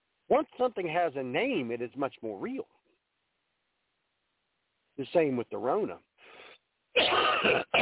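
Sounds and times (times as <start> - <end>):
speech: 0.3 - 2.8, 5.0 - 6.4, 7.0 - 7.8
harsh cough: 7.0 - 7.8.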